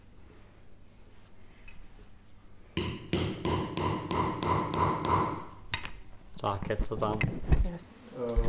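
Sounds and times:
hammer striking metal letter punches to stamp initials: 2.8 - 5.9
speech: 6.4 - 8.4.

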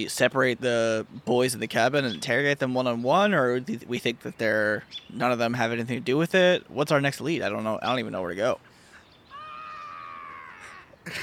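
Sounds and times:
speech: 0.0 - 8.7, 11.1 - 11.2
red-tailed hawk screaming while swooping down: 9.3 - 11.0.

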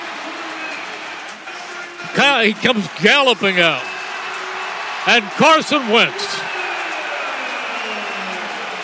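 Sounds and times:
stadium crowd cheering: 0.0 - 8.8
announcer's amplified voice speaking: 2.0 - 3.8, 5.0 - 6.5
speech: 2.2 - 3.9, 5.0 - 6.6.

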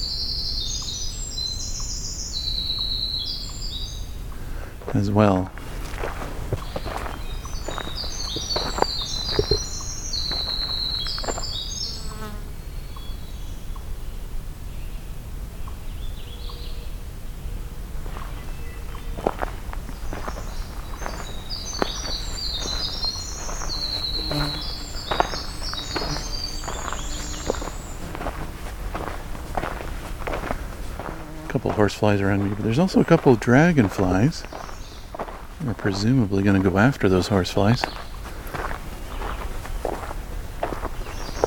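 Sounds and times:
magnolia warbler singing: 0.0 - 41.4
steady crunching footsteps: 4.3 - 11.7, 17.9 - 41.4
speech: 4.9 - 5.6, 32.0 - 34.7, 35.8 - 38.0.

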